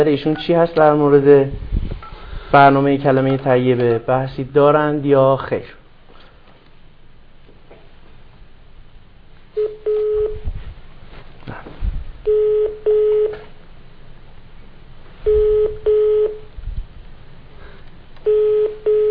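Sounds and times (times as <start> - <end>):
speech: 0.0 - 1.7, 2.5 - 5.8
low rumbling hiss: 0.0 - 19.0
telephone keypad tones while placing a call: 9.6 - 10.4, 15.3 - 16.4, 18.2 - 19.0.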